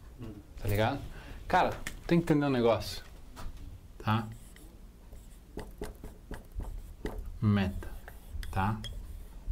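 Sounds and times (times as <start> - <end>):
speech: 0.2 - 3.1, 4.0 - 4.4, 7.4 - 7.9, 8.6 - 8.9
chalk or marker strokes on a board: 4.2 - 9.5.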